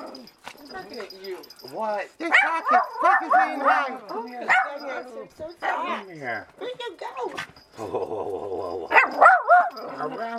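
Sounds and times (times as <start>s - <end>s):
speech: 0.9s - 10.3s
small dog barking: 2.3s - 4.9s, 8.9s - 9.9s
small dog grumbling: 7.8s - 9.4s.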